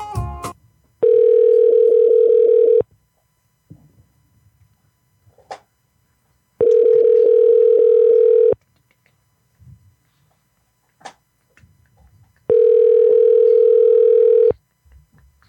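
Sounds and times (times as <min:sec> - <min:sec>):
telephone ringback tone heard from the caller's end: 0:01.0 - 0:02.9, 0:06.6 - 0:08.6, 0:12.5 - 0:14.6.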